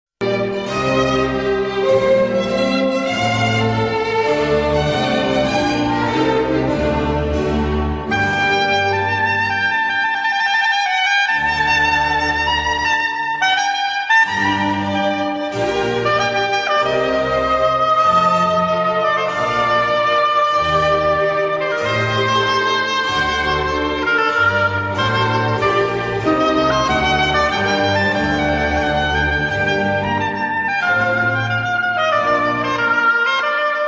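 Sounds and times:
oboe: 0:00.2 - 0:33.8.

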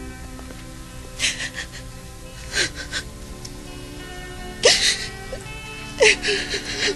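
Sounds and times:
woman crying: 0:01.1 - 0:03.1, 0:04.6 - 0:06.9.

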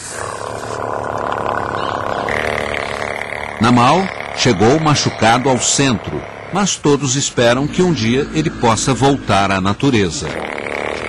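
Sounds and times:
young orphaned elephant calling at an elephant centre in Sri Lanka: 0:00.0 - 0:10.5
speech: 0:03.6 - 0:10.5.

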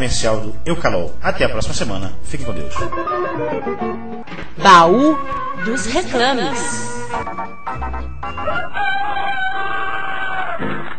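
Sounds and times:
speech: 0:00.0 - 0:04.0, 0:04.6 - 0:09.6
lively band music: 0:02.4 - 0:08.4
rooster crowing: 0:08.3 - 0:10.8.

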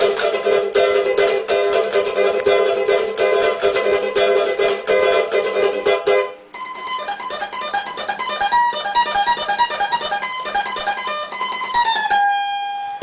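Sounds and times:
cavaquinho: 0:00.0 - 0:13.0.

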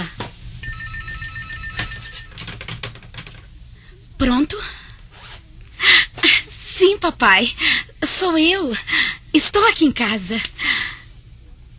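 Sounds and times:
home telephone bell ringing with a bright metallic trill: 0:00.6 - 0:02.5
speech: 0:07.0 - 0:10.8.

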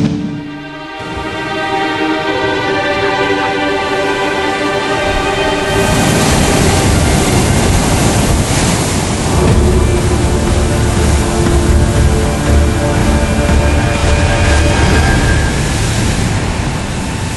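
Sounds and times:
rough sea surf crashing on huge rocks on the coast of Uruguay: 0:01.0 - 0:17.3
steady wind buffeting the microphone: 0:05.2 - 0:17.3.

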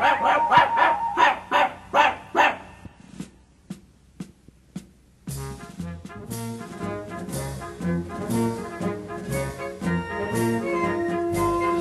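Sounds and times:
little dog yapping out of tune with a children's song: 0:00.0 - 0:02.8
tuneful music: 0:05.3 - 0:11.7
children's song: 0:06.8 - 0:11.7.

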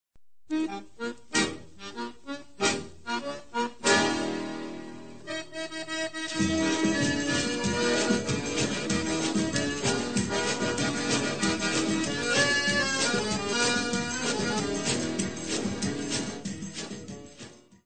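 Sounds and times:
accordion: 0:00.5 - 0:17.8.

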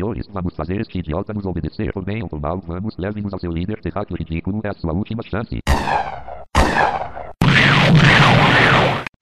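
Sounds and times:
speech: 0:00.1 - 0:07.0
loud explosion rumbling: 0:05.7 - 0:09.1.

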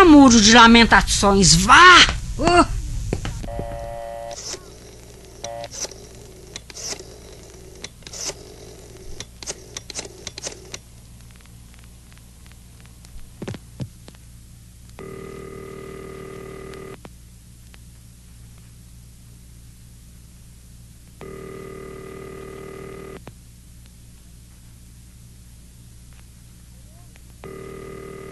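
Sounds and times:
speech: 0:00.2 - 0:02.8
telephone ringing: 0:03.5 - 0:06.0, 0:15.0 - 0:17.0, 0:21.2 - 0:23.2, 0:27.4 - 0:28.2.

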